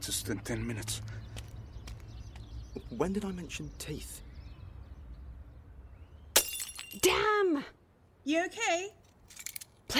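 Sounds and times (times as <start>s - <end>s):
speech: 0.0s - 1.3s, 2.9s - 4.3s, 6.9s - 9.9s
glass bottle dropping and smashing: 6.4s - 7.1s
loud burst of breaking glass: 6.4s - 7.1s.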